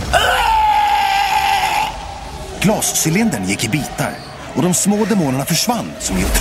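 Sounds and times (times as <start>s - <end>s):
man screaming loudly while melting: 0.1s - 2.1s
speech: 2.6s - 6.3s.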